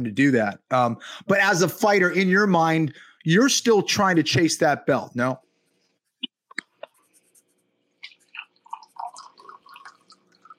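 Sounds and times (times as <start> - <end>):
speech: 0.0 - 5.4
clinks and drips: 8.0 - 10.5
coffee poured by a man into a cup: 8.1 - 10.5.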